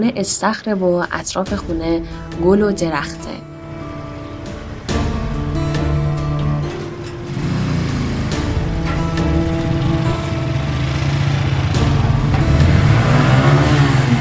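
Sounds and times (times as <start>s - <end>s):
speech: 0.0s - 3.5s
motorcycle engine ridden into an old house: 1.6s - 14.1s.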